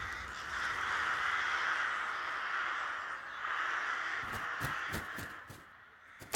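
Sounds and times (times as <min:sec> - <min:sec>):
thousands of crows cawing at their night roost: 0:00.0 - 0:06.3.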